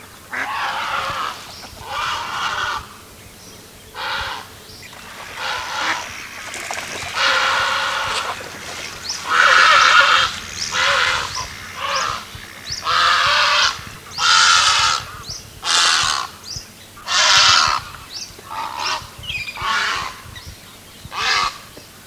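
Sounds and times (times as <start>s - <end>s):
purple heron calling: 0.0s - 20.2s.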